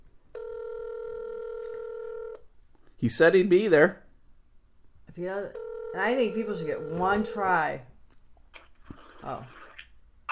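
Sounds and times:
steady electronic telephone ringing tone on the line: 0.3s - 2.4s, 5.2s - 7.8s
speech: 3.0s - 4.0s, 5.2s - 7.9s, 9.2s - 9.6s.

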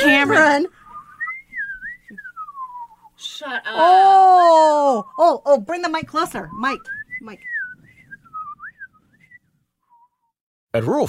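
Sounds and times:
speech: 0.2s - 0.8s, 3.3s - 7.6s, 10.8s - 11.0s
person whistling a wavering tone: 0.2s - 3.2s, 6.2s - 10.4s.

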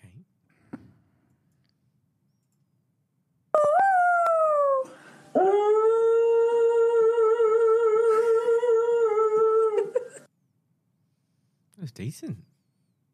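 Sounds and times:
dog howling soulfully: 3.6s - 10.2s
speech: 12.2s - 12.5s.

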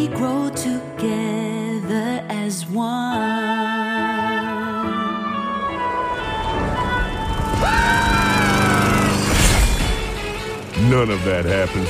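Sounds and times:
soft sustained music: 0.0s - 8.0s, 8.7s - 11.8s
rising mechanical whine: 5.7s - 11.8s
lawn mower small engine sputtering to life and roaring: 6.6s - 11.8s
speech: 10.9s - 11.8s.

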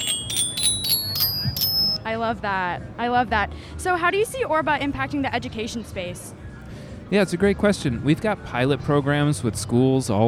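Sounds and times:
bicycle bell ringing: 0.0s - 2.1s
speech: 2.1s - 6.3s, 7.1s - 10.2s.

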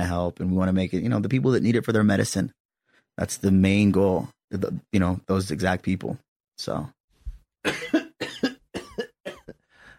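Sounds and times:
speech: 0.0s - 2.6s, 3.2s - 7.0s, 7.6s - 8.0s
person coughing: 7.6s - 9.7s.

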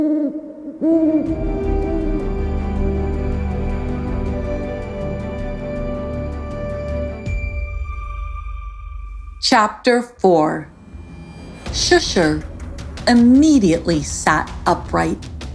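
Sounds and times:
owl hooting: 0.0s - 3.1s
speech: 0.8s - 1.6s, 9.4s - 10.7s, 11.7s - 15.3s
steady droning background: 1.2s - 15.5s.

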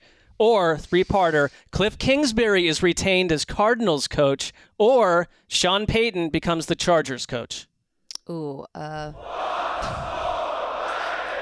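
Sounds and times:
speech: 0.4s - 7.7s, 8.3s - 10.0s
crowd cheering sound effect: 9.2s - 11.4s.

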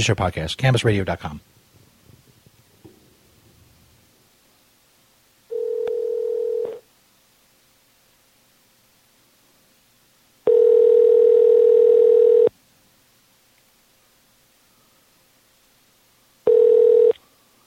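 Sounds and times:
speech: 0.0s - 1.6s
steady electronic telephone ringback tone: 5.5s - 6.8s, 10.5s - 12.5s, 16.4s - 17.2s.

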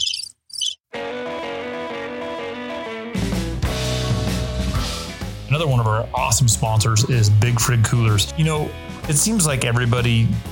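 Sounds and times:
crickets chirping sound effect: 0.0s - 0.8s
loud distorted rock music: 1.0s - 10.4s
speech: 5.6s - 10.4s.

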